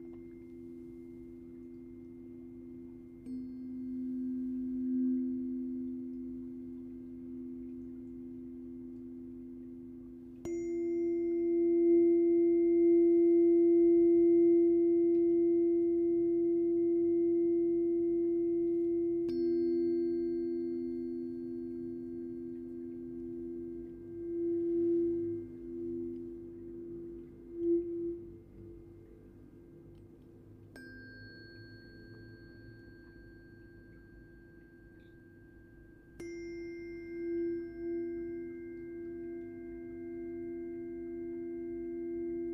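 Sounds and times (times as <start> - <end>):
tuning forks ringing in sustained tones: 0.0 - 29.2, 30.7 - 42.5
low steady pair of tones humming: 0.0 - 42.5.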